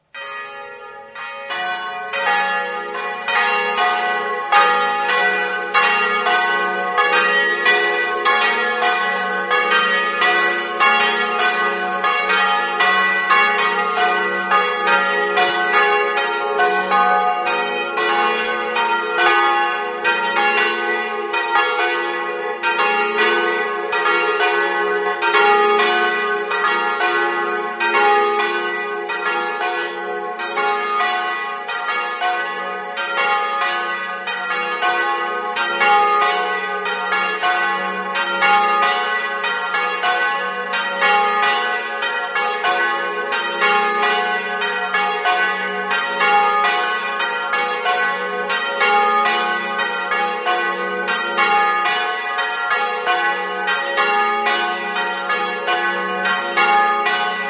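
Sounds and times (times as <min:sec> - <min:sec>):
bells ringing: 0:00.1 - 0:57.4.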